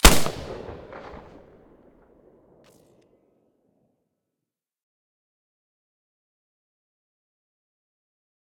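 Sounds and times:
Mosin rifle shots with a silencer: 0:00.0 - 0:01.6.

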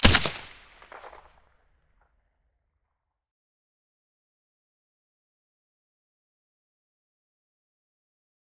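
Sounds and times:
SCAR rifle shot with silencer: 0:00.0 - 0:01.3.

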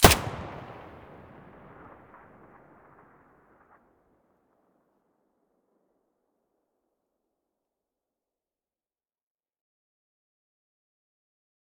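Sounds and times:
MP5 submachine gun muzzle firing: 0:00.0 - 0:01.8.

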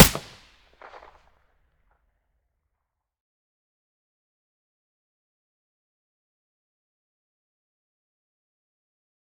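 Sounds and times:
APS gun with silencer: 0:00.0 - 0:01.1.

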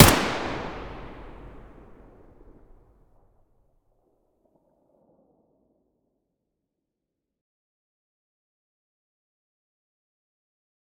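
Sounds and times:
AK74U rifle gunshot from the muzzle: 0:00.0 - 0:02.0.

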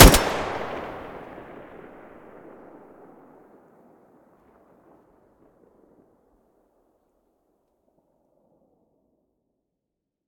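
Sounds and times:
rifle gunshots from the muzzle: 0:00.0 - 0:01.8.

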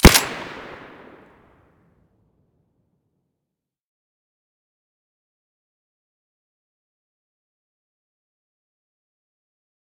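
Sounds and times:
suppressed Saiga rifle shots in stereo: 0:00.0 - 0:01.4.

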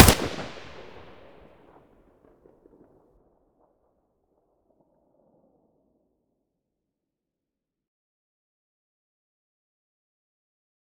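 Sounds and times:
AK-74U rifle muzzle gunshot: 0:00.0 - 0:01.4.

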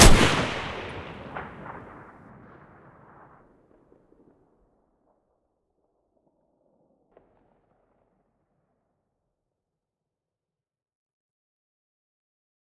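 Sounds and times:
RPK shooting: 0:00.0 - 0:01.8.

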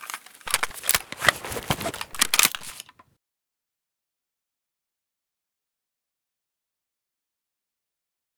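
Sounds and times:
Bizon gun reloading: 0:00.0 - 0:03.0.

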